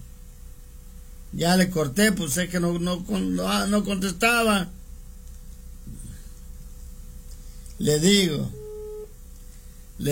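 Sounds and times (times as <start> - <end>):
speech: 1.3 - 4.8, 7.8 - 8.6, 10.0 - 10.1
telephone ringing tone on a call line: 8.4 - 9.1.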